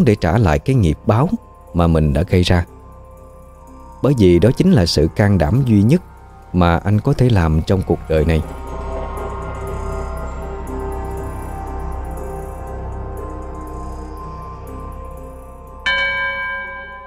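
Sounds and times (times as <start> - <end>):
speech: 0.0 - 2.7, 4.0 - 8.6
temple bell ringing at a pagoda gate: 3.9 - 17.0.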